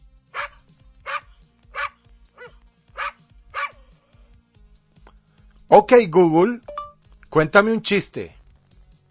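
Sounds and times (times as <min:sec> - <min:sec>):
quieter noise: 0:00.0 - 0:09.1
Border Collie dog barking: 0:00.4 - 0:03.8
speech: 0:05.8 - 0:06.7, 0:07.3 - 0:08.4.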